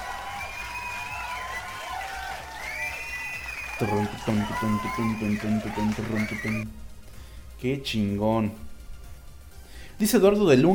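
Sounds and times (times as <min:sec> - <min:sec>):
scattered applause: 0:00.0 - 0:06.6
crowd cheering and whooping: 0:00.0 - 0:06.7
speech: 0:03.8 - 0:06.9, 0:07.6 - 0:08.7, 0:10.0 - 0:10.7.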